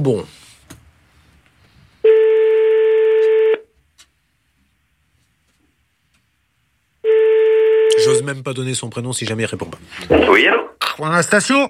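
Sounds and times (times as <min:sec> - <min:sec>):
speech: 0:00.0 - 0:00.4, 0:08.2 - 0:11.6
telephone ringback tone on an outgoing call: 0:02.0 - 0:03.6, 0:07.0 - 0:08.2.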